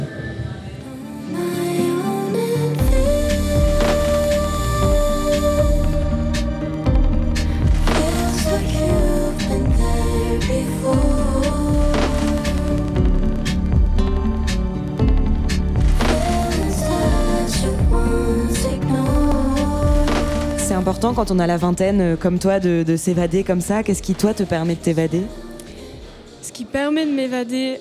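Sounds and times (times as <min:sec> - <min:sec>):
singing voice over a dense band mix: 0:00.0 - 0:22.0
full-band song with drums, bass and sustained melodic layers: 0:02.6 - 0:22.1
speech: 0:21.2 - 0:25.4, 0:26.7 - 0:27.7.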